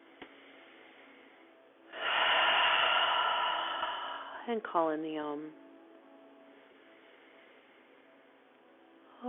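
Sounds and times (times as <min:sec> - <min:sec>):
yoga class inhaling and exhaling together: 0:00.3 - 0:04.5
speech: 0:04.5 - 0:05.6.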